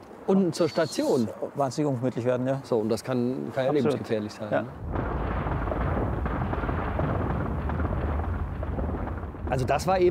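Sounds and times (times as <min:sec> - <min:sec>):
speech: 0:00.3 - 0:05.0, 0:09.5 - 0:10.0
rockfall of large stones high up behind the clouds: 0:04.8 - 0:10.0.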